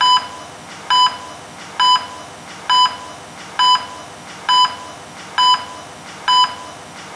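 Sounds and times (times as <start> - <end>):
ECG: 0.0 - 7.1.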